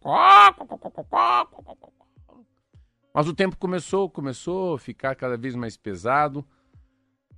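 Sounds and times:
voice imitating a rooster crowing: 0:00.0 - 0:01.9
speech: 0:03.2 - 0:06.6.

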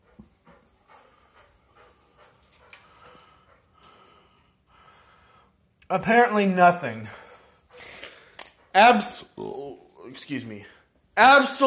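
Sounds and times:
dog panting: 0:00.0 - 0:05.7, 0:07.1 - 0:09.5
speech: 0:05.9 - 0:07.2, 0:08.8 - 0:11.6.

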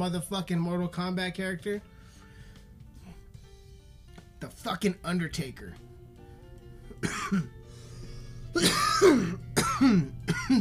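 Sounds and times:
speech: 0:00.0 - 0:02.0, 0:04.4 - 0:05.9, 0:07.0 - 0:07.6, 0:08.5 - 0:10.5
low hum: 0:05.4 - 0:10.5
harsh rasping coughing: 0:06.9 - 0:07.6, 0:08.4 - 0:10.5.

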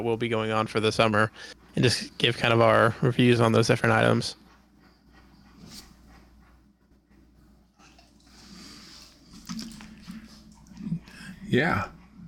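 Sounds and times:
speech: 0:00.0 - 0:04.4, 0:11.5 - 0:12.2
dog panting: 0:00.4 - 0:12.2
small wet dog mouth sounds: 0:07.7 - 0:11.4.

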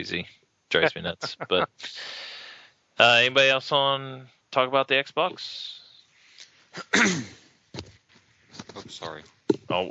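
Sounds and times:
speech: 0:00.0 - 0:02.3, 0:03.0 - 0:05.8, 0:06.8 - 0:07.4, 0:08.8 - 0:09.8
person coughing: 0:06.8 - 0:07.4.

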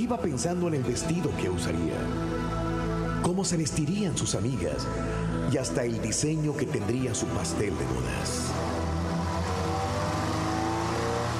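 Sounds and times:
speech: 0:00.0 - 0:02.4, 0:03.2 - 0:08.9
motorcycle engine roaring at high revs: 0:08.2 - 0:11.3.

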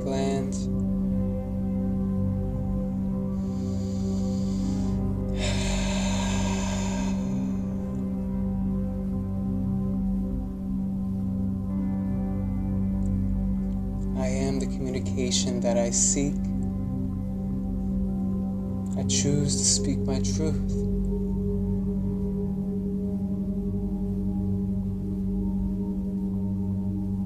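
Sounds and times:
low sustained musical drone: 0:00.0 - 0:27.2
deep slow breathing during a chakra meditation: 0:03.2 - 0:08.6
speech: 0:15.2 - 0:16.5, 0:19.1 - 0:20.9.

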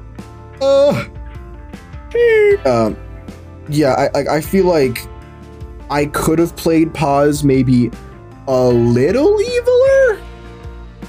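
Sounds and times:
speech: 0:00.6 - 0:01.1, 0:02.2 - 0:03.0, 0:03.7 - 0:05.1, 0:05.9 - 0:09.6
person yawning: 0:00.6 - 0:01.2, 0:02.1 - 0:03.0.

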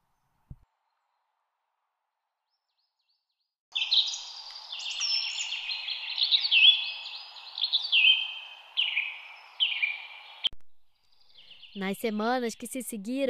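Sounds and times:
bird singing a warbling song: 0:02.5 - 0:13.0
speech: 0:11.8 - 0:13.2.

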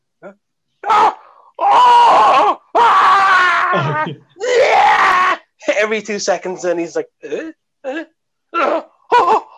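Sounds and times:
speech: 0:00.2 - 0:01.0, 0:05.8 - 0:07.4
man's voice imitating a man screaming in gruesome pain: 0:00.8 - 0:05.5, 0:07.9 - 0:09.5.

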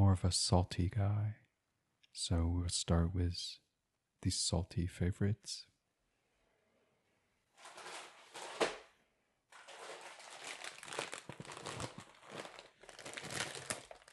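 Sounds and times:
speech: 0:00.2 - 0:01.4, 0:02.1 - 0:03.6, 0:04.2 - 0:05.7
plastic bag of barbecue flavor potato chips being handled: 0:07.6 - 0:08.6, 0:09.5 - 0:14.1.

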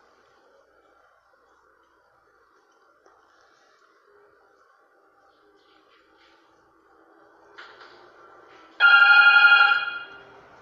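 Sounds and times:
telephone ringing with a bright trill: 0:08.8 - 0:10.4.

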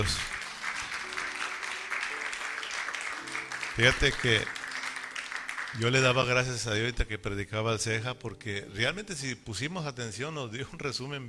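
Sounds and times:
speech: 0:00.0 - 0:00.3, 0:03.8 - 0:04.6, 0:05.7 - 0:11.2
sustained applause from a sizable crowd: 0:00.0 - 0:06.4.

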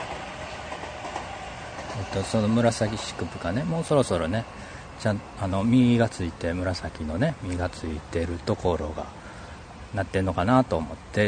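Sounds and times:
train wheels clattering on rails: 0:00.0 - 0:07.8
train passing on railway tracks: 0:00.0 - 0:11.2
speech: 0:02.0 - 0:09.2, 0:09.9 - 0:11.2.

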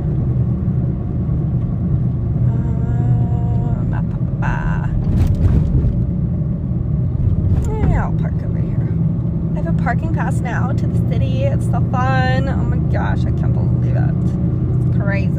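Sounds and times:
car engine and road rumble driving through a city: 0:00.0 - 0:15.3
speech: 0:09.9 - 0:14.4, 0:15.1 - 0:15.3.

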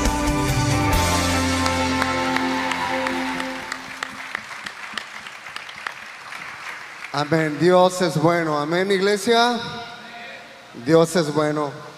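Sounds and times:
sustained music: 0:00.0 - 0:04.2
church audience applauding: 0:00.9 - 0:07.8
speech: 0:07.2 - 0:09.8, 0:10.8 - 0:11.9.

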